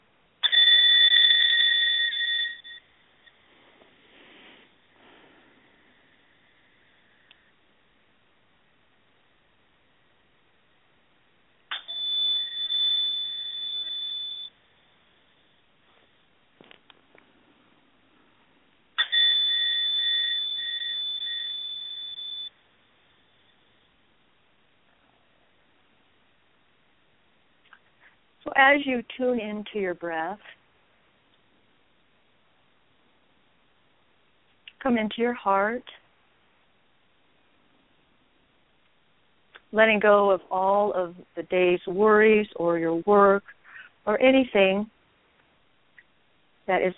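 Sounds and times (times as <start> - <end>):
bright meditation chime struck: 0.4 - 3.5, 11.7 - 16.3, 19.0 - 24.1
speech: 28.5 - 30.6, 34.8 - 36.0, 39.7 - 45.0, 46.7 - 46.9.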